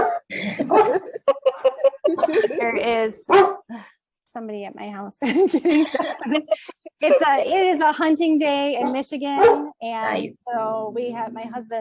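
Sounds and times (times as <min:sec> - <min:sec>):
dog barking: 0:00.0 - 0:01.1, 0:03.3 - 0:03.7, 0:08.8 - 0:09.8
laughter: 0:00.3 - 0:02.9, 0:05.2 - 0:07.4
speech: 0:02.3 - 0:03.5, 0:04.4 - 0:11.7.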